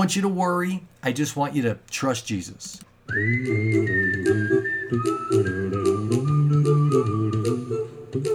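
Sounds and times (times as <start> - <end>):
speech: 0.0 - 7.4
warm low backing instruments: 0.0 - 8.3
clear whistled melody over a song: 3.1 - 8.3.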